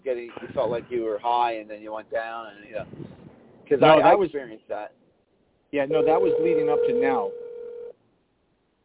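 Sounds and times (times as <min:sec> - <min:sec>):
faint hiss: 0:00.0 - 0:08.8
speech: 0:00.2 - 0:05.0, 0:05.7 - 0:07.4
telephone ringing with a short electronic burst: 0:05.9 - 0:07.9.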